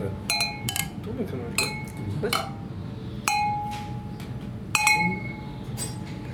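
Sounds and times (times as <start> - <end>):
low murmur of room noise: 0.0 - 6.3
beer glasses clinking in a toast: 0.2 - 1.0, 1.6 - 2.6, 3.3 - 4.0, 4.8 - 6.2
speech: 1.2 - 2.6.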